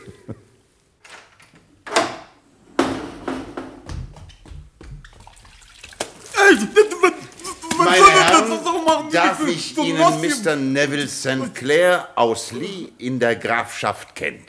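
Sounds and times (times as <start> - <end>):
door being eased open quietly: 1.0 - 4.6
gentle water sounds: 5.0 - 6.4
laughter: 6.4 - 10.6
speech: 8.9 - 14.4.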